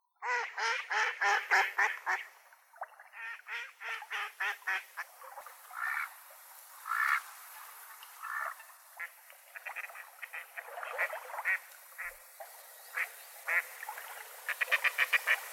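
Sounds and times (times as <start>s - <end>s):
mallard duck: 0.2s - 2.3s, 3.1s - 5.1s, 5.7s - 6.1s, 6.8s - 7.2s, 8.2s - 12.2s, 12.9s - 13.7s, 14.5s - 15.5s.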